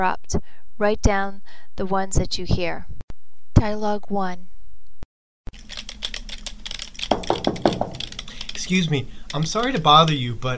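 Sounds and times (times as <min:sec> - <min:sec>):
speech: 0:00.0 - 0:03.0, 0:03.6 - 0:04.5, 0:07.8 - 0:10.5
typing an email on a computer keyboard: 0:05.5 - 0:10.2.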